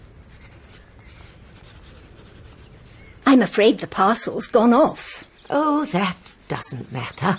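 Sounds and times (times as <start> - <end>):
pencil writing a note scratching on paper: 0.3 - 3.0
speech: 3.3 - 7.3.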